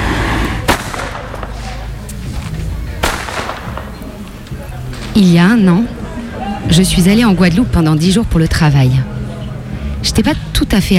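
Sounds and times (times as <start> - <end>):
broadband noise: 0.0 - 10.9
whip with a braided cord tip cracking: 0.6 - 1.8, 3.0 - 4.0
speech: 5.2 - 6.0, 6.7 - 9.1, 10.0 - 10.9.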